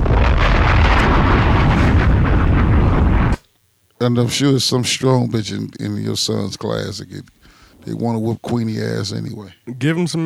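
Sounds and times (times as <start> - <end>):
bombs exploding: 0.0 - 3.4
speech: 4.0 - 10.2.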